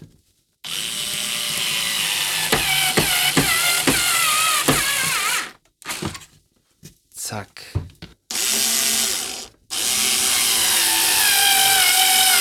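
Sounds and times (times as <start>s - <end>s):
power screwdriver driving a screw: 0.7s - 6.2s, 8.3s - 12.4s.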